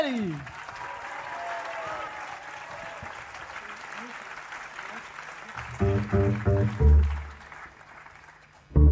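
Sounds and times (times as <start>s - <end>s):
scattered cheers: 0.0s - 4.1s
large audience applause: 0.0s - 8.8s.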